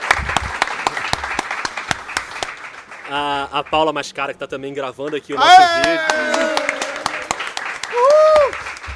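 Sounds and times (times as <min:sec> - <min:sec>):
crowd applauding: 0:00.0 - 0:04.0, 0:05.4 - 0:08.9
speech: 0:03.1 - 0:06.6
person whooping loudly: 0:05.4 - 0:07.3, 0:07.9 - 0:08.6.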